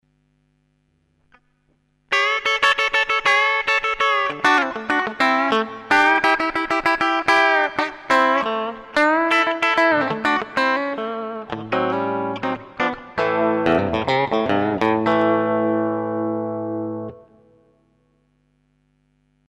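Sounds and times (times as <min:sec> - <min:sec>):
electric guitar with bridge pickup: 0:02.1 - 0:18.1.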